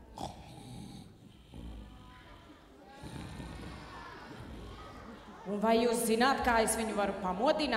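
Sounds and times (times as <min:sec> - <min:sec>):
sleeping man snoring: 0:00.0 - 0:02.0
speech: 0:05.5 - 0:07.7.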